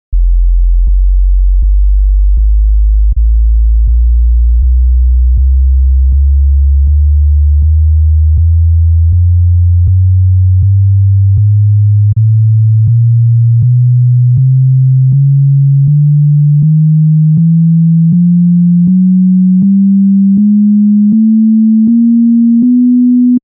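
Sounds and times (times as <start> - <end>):
bass staircase test tones: 0.1 - 23.4.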